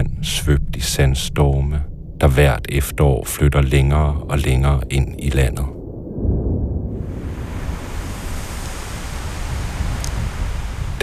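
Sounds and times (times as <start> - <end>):
speech: 0.0 - 5.8
strong west wind roaring across an open beach: 0.0 - 11.0
surf washing on a wide beach: 7.0 - 11.0.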